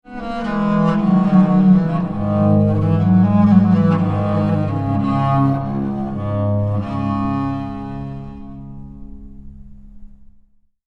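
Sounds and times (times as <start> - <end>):
viola da gamba: 0.2 - 8.9.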